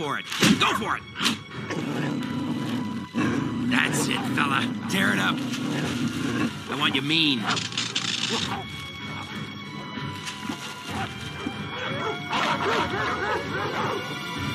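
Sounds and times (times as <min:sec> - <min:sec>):
speech: 0:00.0 - 0:02.4, 0:03.2 - 0:08.8, 0:12.5 - 0:14.3
dogs barking in a fight: 0:01.1 - 0:14.5
dog yipping: 0:07.4 - 0:09.4, 0:10.9 - 0:14.1
dog whimpering: 0:07.4 - 0:14.3.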